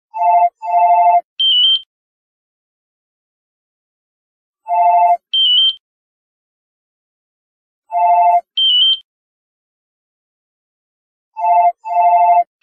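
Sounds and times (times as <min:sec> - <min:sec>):
classic office phone ringing: 0:00.2 - 0:01.3, 0:04.7 - 0:05.3, 0:07.9 - 0:08.6, 0:11.4 - 0:12.5.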